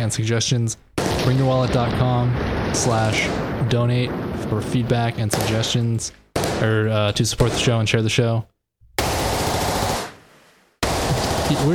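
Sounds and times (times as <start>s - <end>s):
speech: 0.0s - 8.5s, 11.5s - 11.7s
rapid gunfire: 1.0s - 5.8s, 6.4s - 6.8s, 9.0s - 11.7s.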